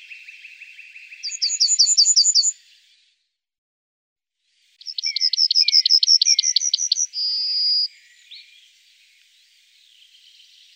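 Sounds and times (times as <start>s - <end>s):
yellowhammer singing: 0.0s - 2.6s, 4.8s - 8.6s.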